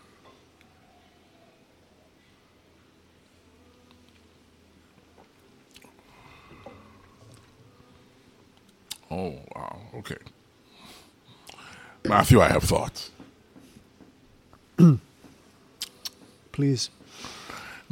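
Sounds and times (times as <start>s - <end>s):
low hum: 0.0s - 17.9s
person sipping whiskey: 5.7s - 7.5s, 11.4s - 11.7s
speech: 9.2s - 10.4s, 12.1s - 13.2s, 14.8s - 15.1s, 16.6s - 17.3s.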